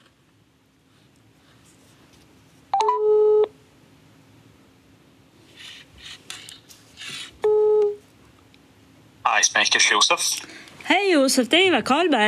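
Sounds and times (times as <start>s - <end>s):
electronic phone ring tone: 2.8s - 3.5s, 7.4s - 8.0s
phone dialing beeps: 2.8s - 3.5s
speech: 9.6s - 12.2s.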